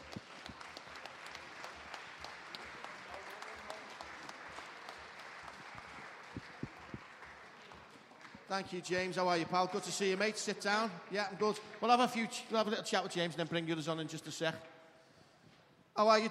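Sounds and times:
audience applause: 0.0s - 12.7s
speech: 8.5s - 14.7s, 16.0s - 16.3s.

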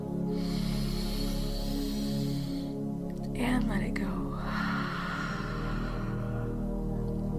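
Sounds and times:
sustained tonal hum: 0.0s - 7.3s
long deep breath drawn in during a box breathing exercise: 0.3s - 3.0s, 4.3s - 7.1s.

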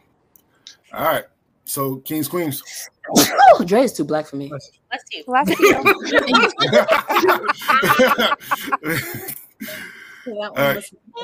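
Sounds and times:
speech: 0.9s - 11.2s
sharp loud sneeze: 2.8s - 3.7s
laughter: 5.4s - 9.9s.

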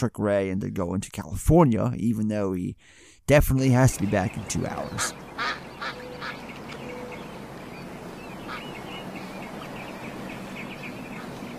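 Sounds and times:
speech: 0.0s - 5.6s
ducks quacking: 3.8s - 11.5s
busy outdoor background: 4.0s - 11.5s.

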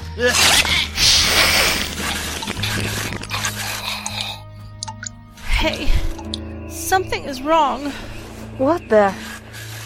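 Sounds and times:
speech: 0.2s - 0.8s, 7.0s - 9.3s
wet squelching chewing: 0.4s - 5.2s.

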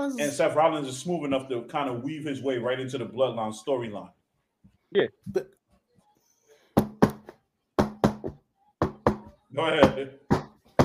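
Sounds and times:
speech: 0.0s - 4.2s, 4.9s - 5.6s, 9.5s - 10.3s
sharp hollow knocking on a door: 6.8s - 10.8s.

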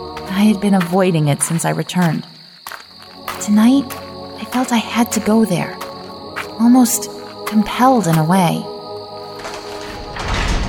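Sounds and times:
speech: 0.4s - 2.3s, 3.4s - 5.8s, 6.6s - 8.7s
heavy wooden tower door swinging open: 9.2s - 10.6s.

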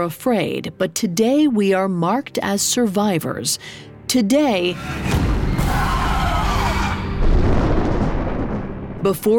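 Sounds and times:
speech: 0.0s - 5.9s, 9.0s - 9.3s
rolling thunder: 7.1s - 9.2s.

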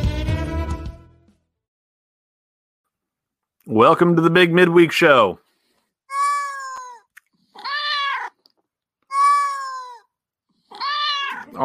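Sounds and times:
speech: 3.7s - 5.4s
cat meowing loudly and insistently: 6.1s - 8.4s, 9.1s - 10.1s, 10.7s - 11.6s.

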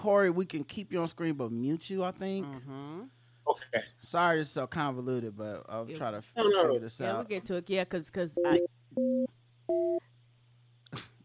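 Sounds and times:
speech: 0.0s - 10.0s
low electrical hum: 0.0s - 11.2s
two-pitch telephone tone beeps: 8.4s - 10.0s.

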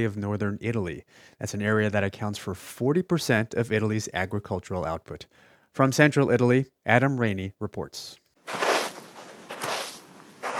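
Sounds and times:
speech: 0.0s - 8.6s
slow footsteps crunching across dry sand of a dry riverbed: 8.5s - 10.5s.

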